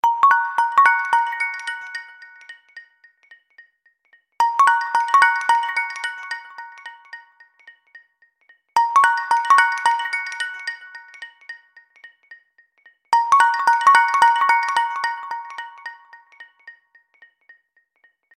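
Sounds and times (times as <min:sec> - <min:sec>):
HTC One standard phone sound: 0:00.0 - 0:02.7, 0:04.4 - 0:07.6, 0:08.8 - 0:11.8, 0:13.2 - 0:16.8.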